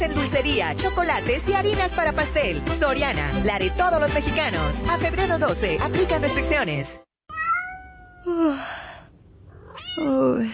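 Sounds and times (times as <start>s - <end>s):
speech: 0.0s - 7.0s, 10.0s - 10.5s
cat meowing: 7.3s - 8.3s, 9.5s - 10.2s.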